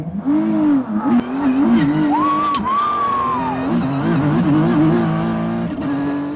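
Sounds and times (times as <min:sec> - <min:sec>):
race car engine roaring around a street circuit in Washington D.C.: 0:00.0 - 0:06.3
race car tire squeal: 0:00.6 - 0:05.2.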